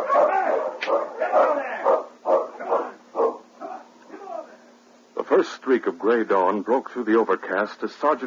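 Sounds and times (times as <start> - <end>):
Malamute sled dogs barking while pulling a light sled on a snow-packed trail: 0.0 - 4.3
speech: 5.4 - 8.2.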